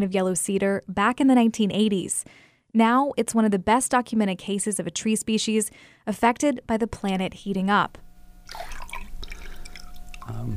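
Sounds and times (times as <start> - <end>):
speech: 0.0 - 8.8, 10.3 - 10.5
water dripping and trickling in a bowl of warm water with yellow cedar bark: 8.4 - 10.5.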